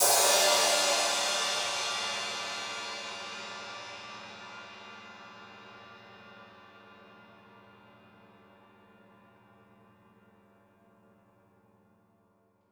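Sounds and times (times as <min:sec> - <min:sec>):
high crash cymbal hits on a drum kit: 0:00.0 - 0:05.4.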